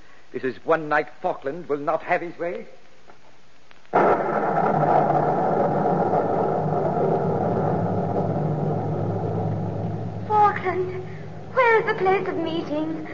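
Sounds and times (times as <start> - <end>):
speech: 0.3 - 2.8, 11.9 - 13.1
thunder rumbling from a storm at night: 3.9 - 13.1.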